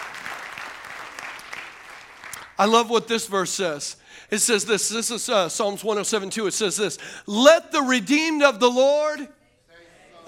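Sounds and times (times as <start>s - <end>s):
church congregation clapping in praise: 0.0s - 3.1s
speech: 2.6s - 9.4s.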